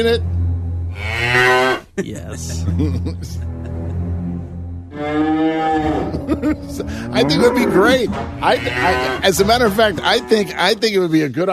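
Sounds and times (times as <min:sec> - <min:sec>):
speech: 0:00.0 - 0:00.3, 0:00.9 - 0:03.8, 0:05.0 - 0:11.5
cow mooing: 0:00.2 - 0:01.8, 0:04.9 - 0:10.8
laughter: 0:02.0 - 0:04.2, 0:05.8 - 0:10.7.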